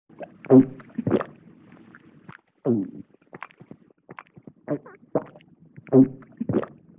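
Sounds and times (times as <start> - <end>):
vintage cartoon comedy human swallow: 0.2 - 1.4, 2.7 - 6.8.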